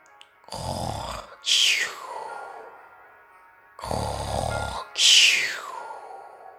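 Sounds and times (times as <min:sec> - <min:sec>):
man snoring loudly: 0:00.5 - 0:02.8, 0:03.8 - 0:06.5.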